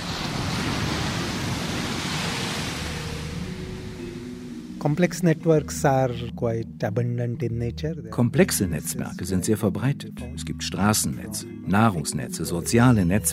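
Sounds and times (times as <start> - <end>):
large rogue ocean waves roaring and churning: 0.0 - 4.9
speech: 4.8 - 13.3.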